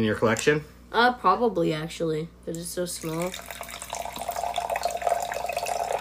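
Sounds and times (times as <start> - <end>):
speech: 0.0 - 3.6
sparkling water poured from a small bottle into a glass: 3.0 - 5.9.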